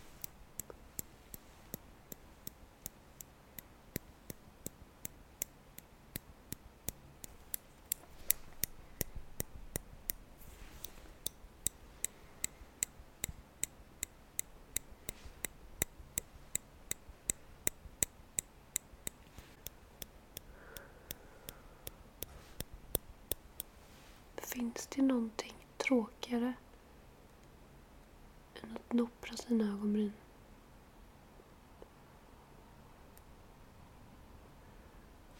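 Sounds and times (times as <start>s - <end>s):
tweezers plucking eyebrows: 0.2s - 10.2s, 10.8s - 23.7s
speech: 24.6s - 26.6s, 29.0s - 30.2s.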